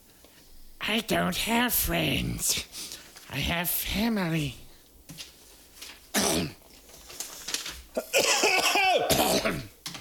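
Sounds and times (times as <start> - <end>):
speech: 0.9 - 4.6
person coughing: 6.1 - 6.6, 8.0 - 9.8
throat clearing: 8.0 - 9.7.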